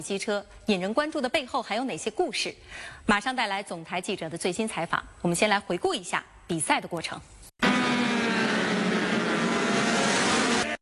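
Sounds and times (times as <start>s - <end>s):
speech: 0.0s - 7.4s
racing superbike engines roaring during a middleweight race in Portugal: 7.6s - 10.8s.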